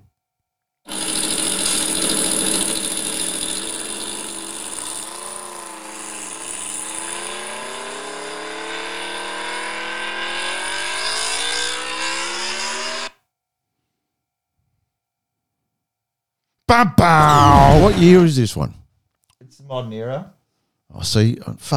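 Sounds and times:
modern Aprilia RSV4 motorcycle engine roaring at high revs: 1.1 - 12.8
speech: 16.7 - 18.8, 19.6 - 21.7.

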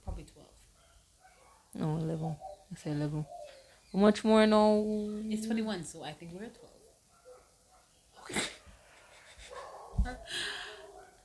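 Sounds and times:
speech: 1.7 - 6.8
dog breathy huff: 8.3 - 11.1.

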